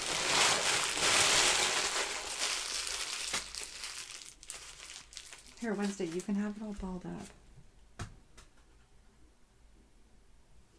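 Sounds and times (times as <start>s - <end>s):
cat crinkling tissue paper and a receipt: 0.0s - 7.3s
speech: 5.6s - 7.4s.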